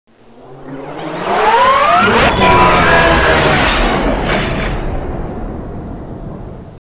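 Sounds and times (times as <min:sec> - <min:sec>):
mothership flying by: 0:00.2 - 0:05.4.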